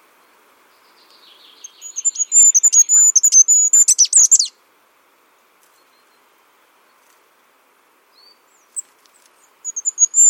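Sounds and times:
bird chirping: 0.2s - 4.5s, 8.1s - 10.2s.

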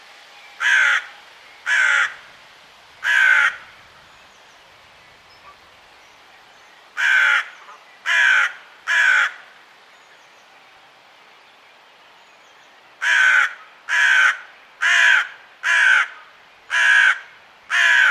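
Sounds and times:
bird giving harsh hoarse cawing calls: 0.6s - 2.3s, 3.0s - 3.8s, 7.0s - 9.5s, 13.0s - 18.0s.

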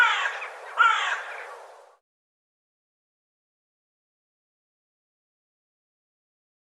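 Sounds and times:
bird giving harsh hoarse cawing notes: 0.0s - 1.6s.

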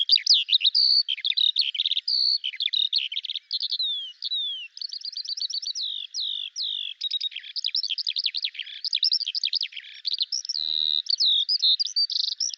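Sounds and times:
bird song: 0.0s - 12.5s.

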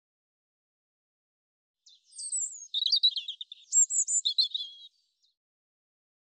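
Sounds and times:
European robin song: 1.8s - 5.4s.

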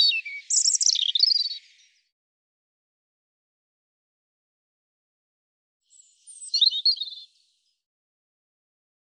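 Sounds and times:
European robin singing warbling phrases: 0.0s - 2.0s, 5.9s - 7.4s.

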